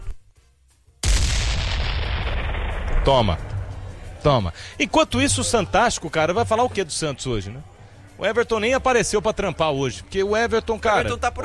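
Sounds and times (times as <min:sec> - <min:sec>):
bomb explosion sound effect blast: 0:01.0 - 0:03.9
speech: 0:03.1 - 0:03.5, 0:04.2 - 0:11.4.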